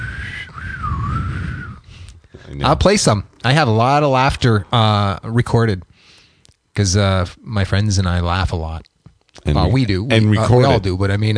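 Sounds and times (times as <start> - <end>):
voice imitating the wheezing whistle of someone sick: 0.0 - 2.0
speech: 2.5 - 5.9, 6.8 - 11.3.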